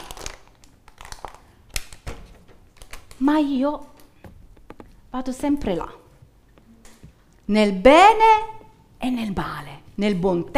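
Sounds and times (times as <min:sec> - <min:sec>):
soft plastic bottle being squeezed and crumpled: 0:00.0 - 0:02.1, 0:02.7 - 0:03.2
speech: 0:03.2 - 0:03.9, 0:05.2 - 0:06.0, 0:07.5 - 0:10.5.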